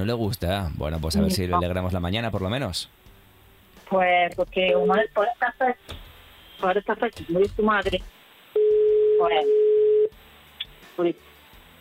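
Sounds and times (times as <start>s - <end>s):
speech: 0.0s - 3.1s, 3.9s - 8.2s, 9.2s - 9.6s, 11.0s - 11.3s
telephone ringback tone while a call is placed: 8.6s - 10.1s.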